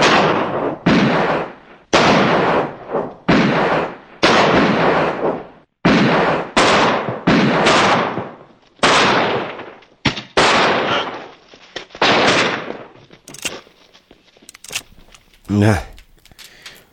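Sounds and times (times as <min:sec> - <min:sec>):
gunshots from a Nagant revolver and a Walther pistol fired at skulls: 0:00.0 - 0:11.3, 0:12.0 - 0:13.6
speech: 0:15.5 - 0:15.9.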